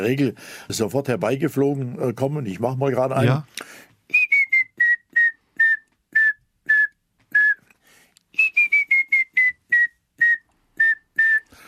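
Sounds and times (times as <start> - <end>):
speech: 0.0 - 3.9
person whistling an imitation of a grey-headed woodpecker call: 4.1 - 7.7, 8.4 - 11.6.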